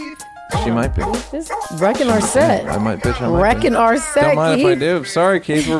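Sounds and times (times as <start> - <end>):
speech: 0.7 - 5.7
dog barking: 1.0 - 3.3
dog whiny yelps: 1.0 - 4.2.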